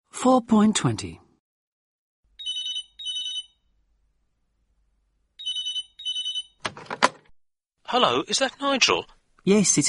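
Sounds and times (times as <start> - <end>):
speech: 0.2 - 1.2, 7.9 - 9.8
telephone ringing in double-trill bursts: 2.4 - 3.6, 5.4 - 6.6.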